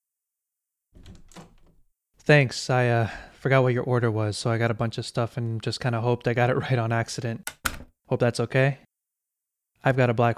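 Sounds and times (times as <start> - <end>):
door opening: 1.0 - 1.9
speech: 2.3 - 8.9, 9.8 - 10.3.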